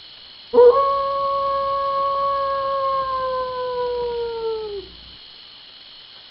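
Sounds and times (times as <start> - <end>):
wolf howling: 0.6 - 5.2.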